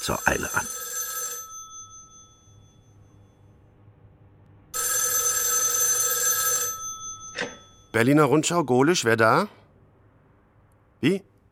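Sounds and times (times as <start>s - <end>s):
speech: 0.0s - 0.9s, 8.0s - 9.6s, 11.0s - 11.3s
telephone ringing in a newspaper editorial office: 0.0s - 3.2s, 4.7s - 8.0s.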